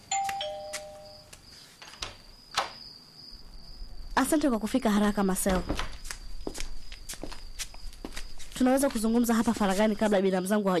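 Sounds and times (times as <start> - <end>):
doorbell ringing in a house: 0.0 - 1.3
speech: 4.2 - 6.0, 8.6 - 10.7.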